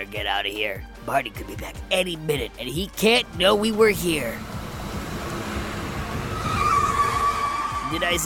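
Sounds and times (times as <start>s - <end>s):
speech: 0.0s - 4.5s, 7.9s - 8.2s
orange van engine rumbling as it pulls up: 1.6s - 8.2s
van tire squeal skidding to a stop: 4.4s - 8.2s.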